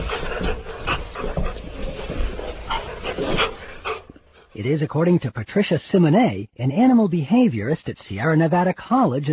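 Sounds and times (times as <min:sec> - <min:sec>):
dog laughing at play with breathy panting-like exhalations: 0:00.0 - 0:04.6
speech: 0:04.6 - 0:09.3.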